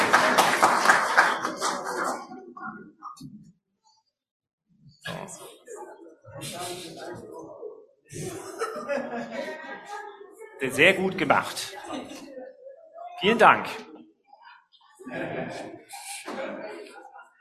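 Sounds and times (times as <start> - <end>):
audience applause: 0.0 - 2.2
crowd voices: 0.0 - 3.5, 5.3 - 17.3
speech: 5.0 - 12.3, 13.2 - 13.9, 15.1 - 16.7
laughter: 8.1 - 10.2, 11.8 - 12.5, 15.0 - 17.2.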